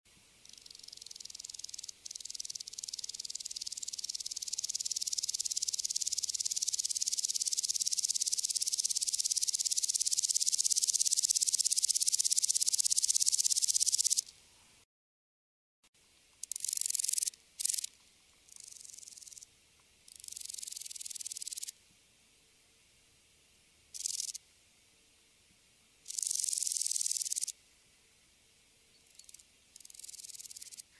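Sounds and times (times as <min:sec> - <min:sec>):
Omocestus rufipes stridulating: 0:00.4 - 0:14.3, 0:16.3 - 0:21.8, 0:23.9 - 0:24.4, 0:26.0 - 0:27.6, 0:29.0 - 0:30.9.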